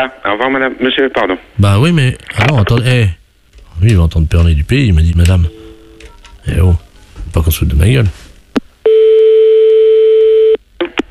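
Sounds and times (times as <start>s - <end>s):
speech: 0.0s - 3.2s, 3.8s - 5.6s, 6.5s - 8.2s
telephone line tone as a caller rings back: 5.3s - 6.4s, 8.8s - 10.6s.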